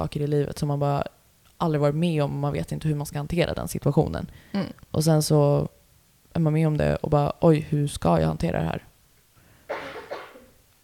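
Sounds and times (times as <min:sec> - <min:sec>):
speech: 0:00.0 - 0:08.9
person coughing: 0:09.7 - 0:10.6.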